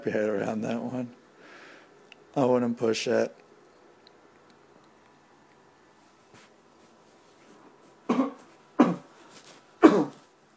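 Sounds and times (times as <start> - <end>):
speech: 0.0 - 1.2, 2.3 - 3.4
quiet room noise: 0.0 - 10.5
person coughing: 8.1 - 9.1, 9.8 - 10.3.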